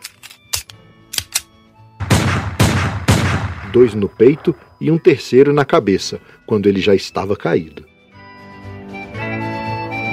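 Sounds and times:
loud sharp gunshots: 2.0 - 4.7
speech: 3.7 - 7.9.

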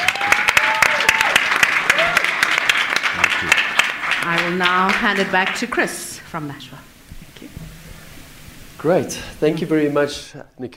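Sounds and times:
audience applause: 0.0 - 6.3
speech: 4.5 - 6.9, 8.8 - 10.7.

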